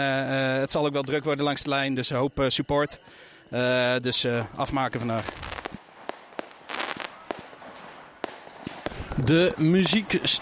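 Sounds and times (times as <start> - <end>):
speech: 0.0 - 5.5, 9.2 - 10.4
fireworks and Bengal fire banging at a sports park: 4.7 - 10.4.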